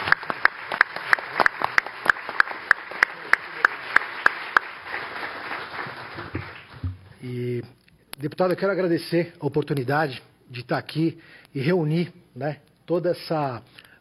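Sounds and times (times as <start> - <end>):
one steady clapper in an even rhythm: 0.0 - 7.0
audience applause: 0.0 - 7.1
speech: 7.2 - 13.8.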